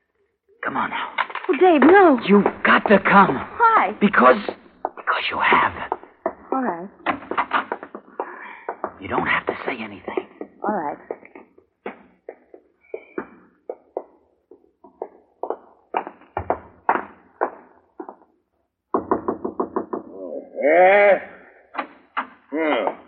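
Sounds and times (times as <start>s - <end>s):
speech: 0.7s - 4.6s, 5.2s - 5.9s, 9.0s - 11.1s
knocking on a front door: 1.4s - 14.2s, 14.9s - 18.2s, 18.9s - 20.2s.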